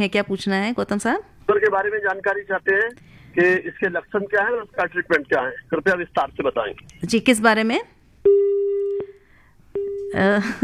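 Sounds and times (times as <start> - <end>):
speech: 0.0 - 8.5, 10.1 - 10.6
telephone busy tone after dropped call: 8.3 - 9.2, 9.8 - 10.2.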